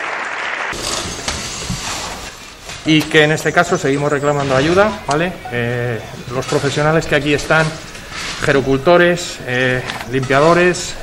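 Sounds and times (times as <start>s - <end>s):
crowd applauding in the Spanish parliament during a tribute to healthcare workers: 0.0s - 1.4s
speech: 0.7s - 1.0s, 2.8s - 11.0s.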